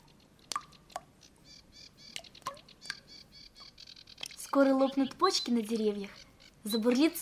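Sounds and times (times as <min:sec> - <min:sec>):
birds twittering softly: 0:00.0 - 0:07.1
spring meltwater dripping from thawing snow in the spring sun: 0:00.0 - 0:07.1
speech: 0:04.5 - 0:07.1.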